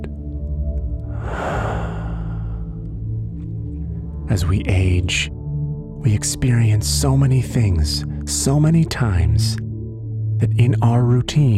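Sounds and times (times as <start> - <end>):
steady sustained musical drone: 0.9 - 3.2
person breathing in and out slowly and deeply: 1.0 - 3.0
speech: 4.3 - 5.4, 6.0 - 9.6, 10.4 - 11.5.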